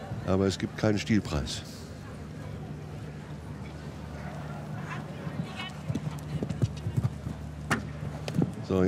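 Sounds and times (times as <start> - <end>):
speech: 0.3 - 1.8
horse hooves galloping during a show jumping ride: 4.8 - 8.6.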